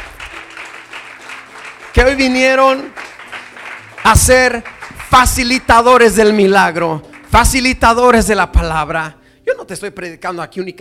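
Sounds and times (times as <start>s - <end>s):
audience applause: 0.0s - 6.4s
speech: 2.0s - 3.0s, 4.0s - 10.8s.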